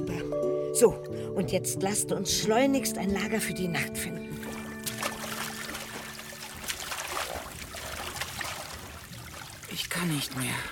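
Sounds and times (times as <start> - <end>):
speech: 0.1 - 4.5, 10.0 - 10.7
boat paddle splashes in a swamp: 4.4 - 10.0
water trickling from paddle strokes: 4.4 - 10.7.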